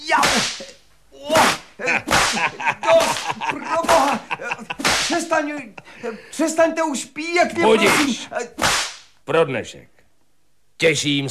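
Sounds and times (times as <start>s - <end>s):
whip cracking: 0.2s - 0.7s, 1.3s - 3.3s, 4.8s - 5.3s, 7.8s - 9.1s
laughter: 1.8s - 6.4s
speech: 5.8s - 8.7s, 9.3s - 9.9s, 10.8s - 11.2s.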